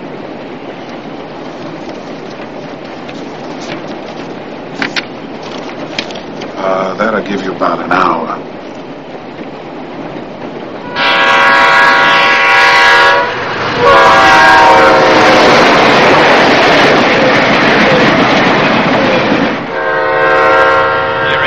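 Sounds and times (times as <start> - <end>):
train arriving with a loud steady rumble: 0.0 - 21.4
speech: 7.2 - 8.3
train horn blasts: 10.8 - 15.7, 19.7 - 21.4.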